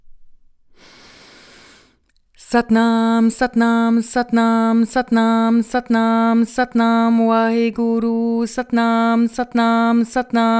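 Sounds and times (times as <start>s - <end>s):
person inhaling before chanting a mantra: 0.7s - 2.1s
speech: 2.5s - 10.5s.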